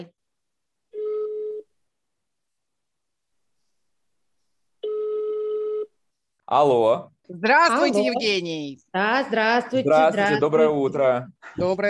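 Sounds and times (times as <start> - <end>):
ringback tones of an outgoing telephone call: 1.0 - 1.6, 4.8 - 5.9
speech: 6.5 - 11.8.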